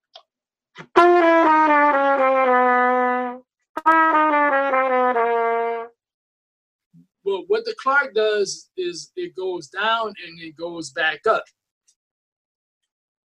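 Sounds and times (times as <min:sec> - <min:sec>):
trumpet playing slurred descending five-note groupings to the tritone: 0:00.8 - 0:06.0
speech: 0:07.8 - 0:11.6.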